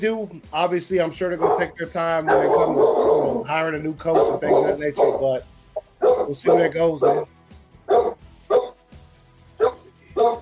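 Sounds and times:
speech: 0:00.0 - 0:05.6, 0:06.3 - 0:07.3
dog barking: 0:01.4 - 0:03.5, 0:04.1 - 0:05.4, 0:06.0 - 0:07.3, 0:07.9 - 0:08.8, 0:09.6 - 0:10.3.

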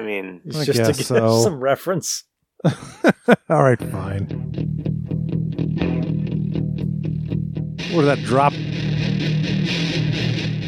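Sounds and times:
speech: 0:00.0 - 0:04.9, 0:07.9 - 0:10.2
laughter: 0:00.5 - 0:01.6, 0:02.6 - 0:03.8
heavily distorted rock track: 0:03.8 - 0:10.6.

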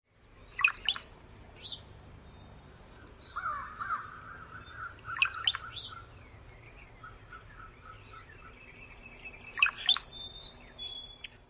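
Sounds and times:
male brown-headed cowbird singing gurgling whistles: 0:00.5 - 0:11.4
soft chattering brown-headed cowbird calls: 0:03.0 - 0:11.4.

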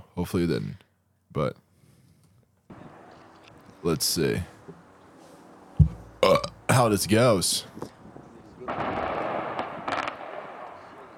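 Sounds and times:
speech: 0:00.2 - 0:01.6, 0:03.8 - 0:04.5, 0:06.2 - 0:07.9
explosive blast from controlled demolition of a chimney stack: 0:08.7 - 0:11.0
sharp cracks from chimney demolition: 0:08.7 - 0:11.1.

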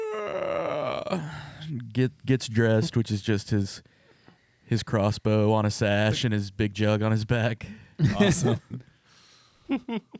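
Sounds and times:
person imitating a long stretching yawn: 0:00.0 - 0:01.6
speech: 0:00.2 - 0:03.9, 0:04.7 - 0:08.8, 0:09.7 - 0:10.1
laughter: 0:08.0 - 0:08.8, 0:09.7 - 0:10.1.

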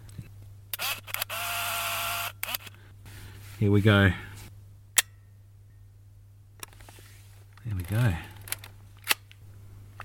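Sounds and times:
steady low hum: 0:00.0 - 0:10.0
camera shutter clicks: 0:00.8 - 0:02.8
speech: 0:03.6 - 0:04.3, 0:07.9 - 0:08.3.

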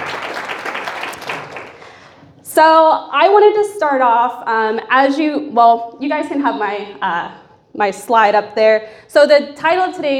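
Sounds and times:
audience applause: 0:00.0 - 0:02.2
speech: 0:02.6 - 0:10.1.

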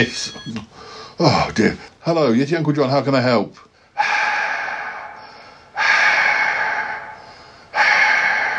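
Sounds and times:
speech: 0:00.0 - 0:04.1
heavy noisy breathing over a phone line: 0:00.7 - 0:01.2, 0:03.8 - 0:08.5.

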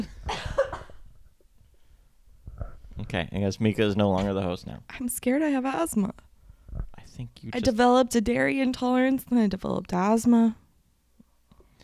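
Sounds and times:
cough: 0:00.0 - 0:01.0
speech: 0:03.1 - 0:06.3, 0:07.2 - 0:10.6.

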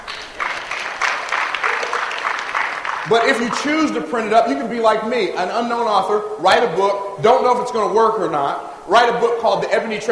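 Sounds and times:
audience clapping: 0:00.0 - 0:04.1
speech: 0:03.1 - 0:10.0.

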